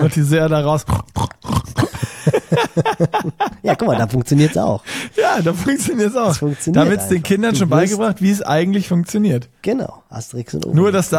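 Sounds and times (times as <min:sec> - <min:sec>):
speech: 0:00.0 - 0:01.4, 0:02.5 - 0:11.1
human voice imitating a wild boar grunting: 0:00.8 - 0:02.1
laughter: 0:01.8 - 0:08.2.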